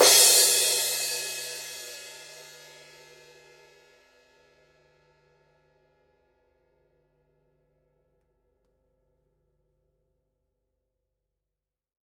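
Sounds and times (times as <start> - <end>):
18-inch Paiste crash cymbal struck on edge: 0.0 - 3.8.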